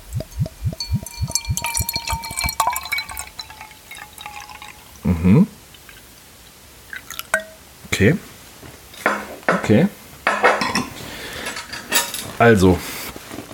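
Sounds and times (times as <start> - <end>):
dark-coloured drink glugging from a bottle into a glass: 0.1 - 5.0, 6.9 - 7.6
glass clinks and knocks: 0.2 - 4.8, 7.2 - 7.6, 9.0 - 9.7, 10.3 - 11.0
speech: 8.0 - 8.3, 9.7 - 10.0, 12.4 - 13.0.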